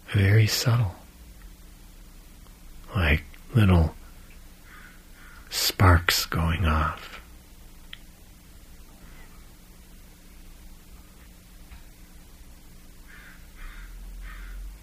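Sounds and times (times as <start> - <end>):
steady hiss of noise: 0.0 - 14.8
speech: 0.1 - 1.0, 3.0 - 4.0, 5.5 - 7.2
crow cawing: 4.6 - 5.5, 13.1 - 14.7.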